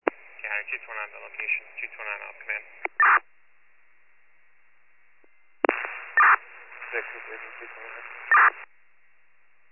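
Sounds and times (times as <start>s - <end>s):
crackling two-way radio static: 0.0s - 3.2s, 5.6s - 8.7s
speech: 0.6s - 3.3s, 6.9s - 8.6s
short loud clicks opening and closing the radio channel: 5.2s - 8.6s
two-way radio squelch bursts: 8.3s - 8.6s.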